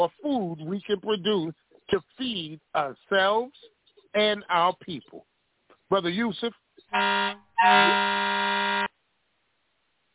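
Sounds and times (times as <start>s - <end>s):
speech: 0.0s - 5.3s, 5.9s - 8.9s
loud brassy air horn blasts: 6.9s - 8.9s.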